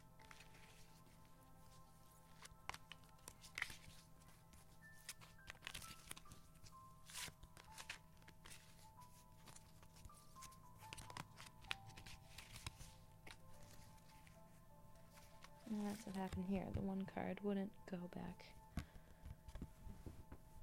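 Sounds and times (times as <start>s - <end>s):
deck of cards being shuffled: 0.2s - 14.4s, 15.0s - 16.9s, 18.7s - 20.3s
speech: 15.7s - 18.6s.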